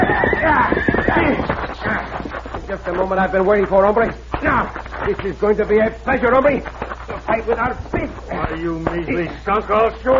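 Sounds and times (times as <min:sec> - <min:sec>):
horse whinnying loudly: 0:00.0 - 0:02.1
horse hooves clip-clopping: 0:00.0 - 0:10.1
speech: 0:02.9 - 0:06.8, 0:07.4 - 0:10.1.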